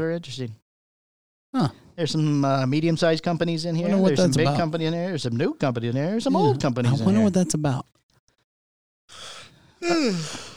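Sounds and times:
speech: 0.0s - 0.6s, 1.5s - 8.0s, 9.8s - 10.5s
yawn: 1.6s - 1.8s, 9.2s - 10.5s.

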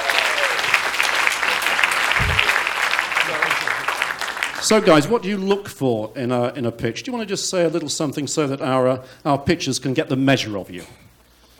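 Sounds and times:
audience applause: 0.0s - 5.5s
speech: 4.6s - 11.0s.

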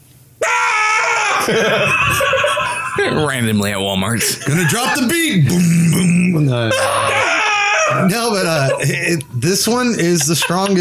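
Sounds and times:
voice imitating a man screaming at people: 0.4s - 1.5s, 5.5s - 8.3s
laughter: 1.0s - 3.4s, 4.1s - 5.8s, 6.4s - 10.7s
speech: 1.5s - 7.1s, 7.9s - 10.7s.

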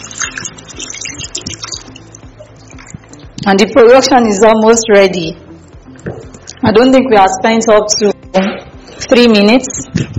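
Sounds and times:
formalin being poured steadily into a container: 0.0s - 3.3s
speech: 3.4s - 5.4s, 6.7s - 8.1s, 9.1s - 9.8s.

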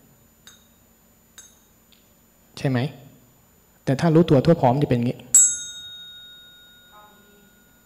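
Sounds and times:
speech: 2.6s - 3.0s, 3.9s - 5.3s
single struck bell ringing with long resonance: 5.4s - 7.8s.

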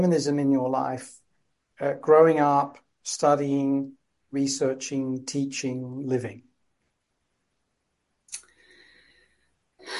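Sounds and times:
speech: 0.0s - 1.2s, 1.8s - 6.5s
very deep wheezy breath drawn in during an interview: 8.5s - 9.9s.

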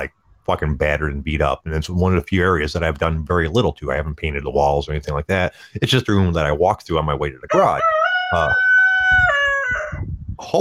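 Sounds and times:
speech: 0.0s - 9.4s, 10.4s - 10.5s
rooster crowing: 7.5s - 10.0s.

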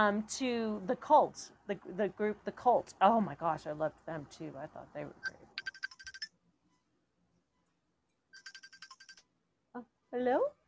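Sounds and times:
speech: 0.0s - 5.4s, 9.8s - 10.6s
electronic phone ringtone chirping: 5.6s - 6.3s, 8.4s - 9.2s.

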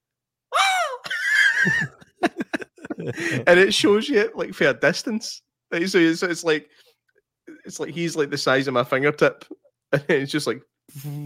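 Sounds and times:
person imitating the scream of a man thrown off a motorbike: 0.5s - 2.0s
laughter: 1.1s - 3.8s
speech: 1.6s - 2.4s, 3.0s - 6.9s, 7.7s - 11.2s
short choppy vocal bursts: 10.9s - 11.2s.

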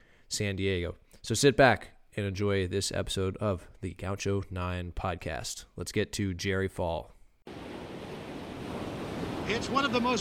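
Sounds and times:
speech: 0.3s - 7.2s, 9.5s - 10.1s
ocean surf crashing onshore: 7.5s - 10.1s.

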